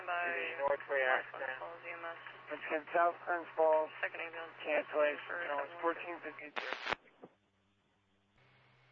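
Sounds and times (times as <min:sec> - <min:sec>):
dispatch radio talk: 0:00.0 - 0:07.0
speech: 0:00.2 - 0:07.0.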